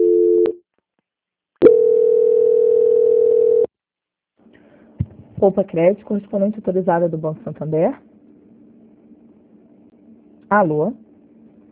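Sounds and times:
two-pitch telephone line tone during a call transfer: 0.0s - 0.6s, 1.6s - 3.7s
speech: 5.4s - 8.1s, 10.5s - 11.1s.

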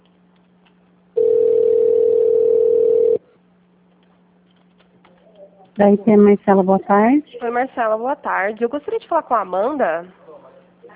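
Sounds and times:
telephone line tone while a call is transferred: 1.2s - 3.2s
speech: 5.8s - 10.2s.

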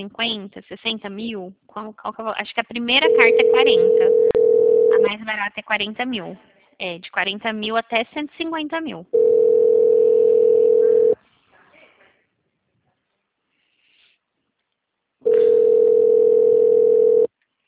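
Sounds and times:
speech: 0.0s - 4.3s, 5.0s - 9.6s
telephone ringback tone on an unanswered call: 3.0s - 5.2s, 9.2s - 11.2s, 15.3s - 17.3s.

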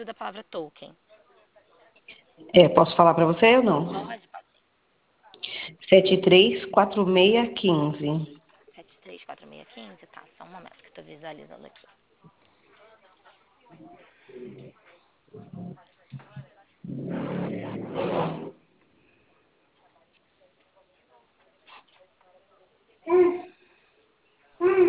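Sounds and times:
speech: 0.0s - 1.1s, 2.4s - 4.3s, 5.6s - 8.4s, 9.1s - 11.9s, 13.7s - 15.8s
baby babbling: 23.0s - 23.6s, 24.6s - 24.8s
baby squealing: 23.1s - 23.6s.

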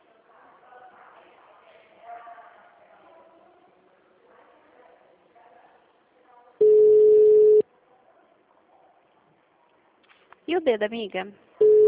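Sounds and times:
telephone busy tone beep after dropped call: 6.6s - 7.6s, 11.6s - 11.8s
speech: 10.6s - 11.5s.

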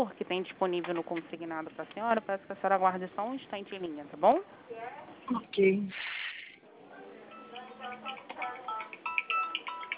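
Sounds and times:
speech: 0.0s - 6.2s
murmur of voices: 6.6s - 9.1s
mobile phone ringing with short high electronic tones: 7.3s - 9.9s.

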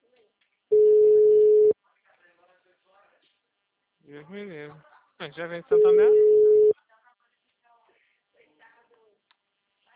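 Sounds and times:
telephone dial tone: 0.7s - 1.7s, 6.1s - 6.7s
speech: 4.2s - 6.4s.

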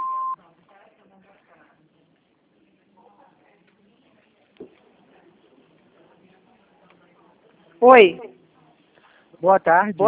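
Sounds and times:
answering machine beep: 0.0s - 0.4s
faint voices: 0.0s - 9.4s
low noise: 0.0s - 10.0s
speech: 7.8s - 8.3s, 9.4s - 10.0s.

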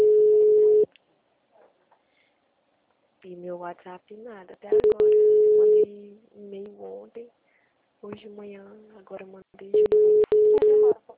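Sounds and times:
telephone dial tone as a call is placed: 0.0s - 0.9s, 4.8s - 5.8s, 9.8s - 11.0s
speech: 3.3s - 5.2s, 5.8s - 7.4s, 8.0s - 10.2s.

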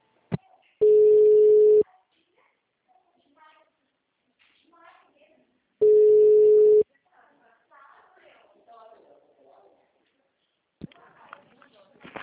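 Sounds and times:
person answering a transferred phone call: 0.8s - 1.8s, 5.8s - 6.8s
ringback tone as a phone call is transferred: 0.8s - 1.8s, 5.8s - 6.8s.

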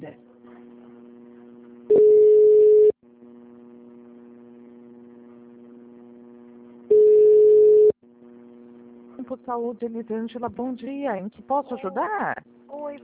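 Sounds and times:
low steady electronic hum of a telephone transfer tone: 0.0s - 13.0s
telephone transfer tone beeps on a customer service line: 1.9s - 2.9s, 6.9s - 8.0s
speech: 9.3s - 13.0s.

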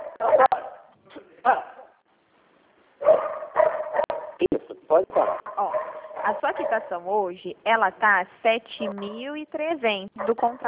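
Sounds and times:
pet dog barking: 0.0s - 0.9s, 3.0s - 4.4s, 5.1s - 7.0s, 10.2s - 10.6s
speech: 5.0s - 5.5s, 6.3s - 10.6s.

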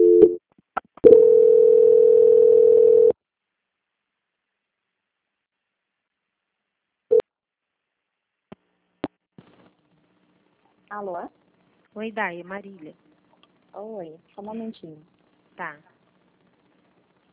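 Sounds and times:
telephone line tone during a bank call transfer: 0.0s - 0.4s, 1.0s - 3.2s
speech: 11.0s - 11.4s, 12.0s - 13.1s, 13.8s - 15.9s.

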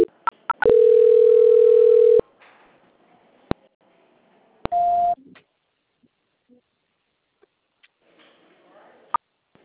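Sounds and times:
steady electronic telephone line tone during a call transfer: 0.0s - 2.2s.

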